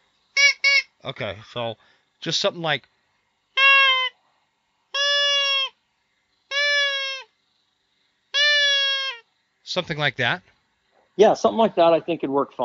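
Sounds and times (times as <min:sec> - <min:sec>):
hand-blown predator call for hunting bears: 0:00.3 - 0:01.2, 0:03.5 - 0:04.2, 0:04.9 - 0:05.8, 0:06.5 - 0:07.4, 0:08.3 - 0:09.3
speech: 0:01.0 - 0:03.0, 0:09.8 - 0:10.5, 0:11.2 - 0:12.6.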